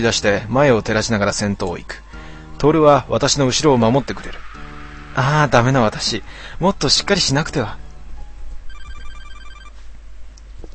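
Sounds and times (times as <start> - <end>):
speech: 0.0 - 2.0, 2.6 - 4.5, 5.2 - 7.8
low steady hum: 0.0 - 10.6
mobile phone ringing with bright electronic beeps: 8.7 - 9.8.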